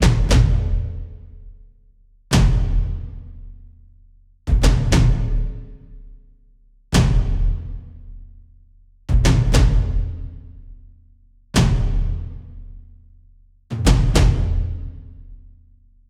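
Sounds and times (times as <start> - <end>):
cinematic energy drum stabs: 0.0 - 1.4, 2.3 - 3.6, 4.5 - 6.0, 6.9 - 8.3, 9.1 - 10.8, 11.6 - 12.9, 13.7 - 15.4.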